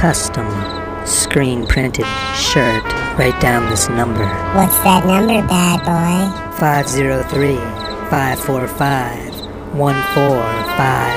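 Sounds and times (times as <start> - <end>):
speech: 0.0 - 11.1
cricket chirping: 0.6 - 0.9, 7.2 - 8.2, 9.2 - 9.7
loud voice-like warbling rising and falling in pitch: 2.6 - 11.1.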